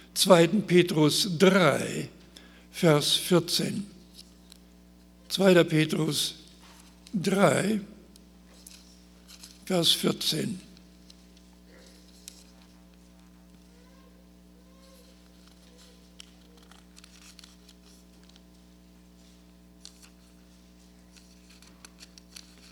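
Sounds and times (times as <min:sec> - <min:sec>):
steady low electrical hum: 0:00.0 - 0:22.7
speech: 0:00.2 - 0:02.2, 0:02.8 - 0:04.0, 0:05.3 - 0:06.4, 0:07.1 - 0:07.9, 0:09.7 - 0:10.7
Bible pages being leafed through: 0:08.5 - 0:09.6, 0:15.2 - 0:18.6, 0:19.2 - 0:22.7.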